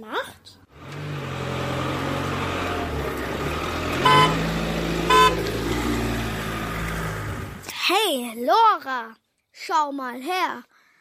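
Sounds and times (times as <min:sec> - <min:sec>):
car engine rumble while towing a trailer: 0:00.6 - 0:07.8
car towing a trailer loaded with tools honking: 0:03.8 - 0:05.7
speech: 0:08.1 - 0:10.7.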